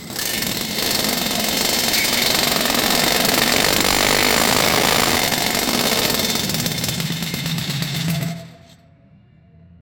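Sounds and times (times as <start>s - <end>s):
Formula 1 pit stop wrench: 0.3s - 7.4s.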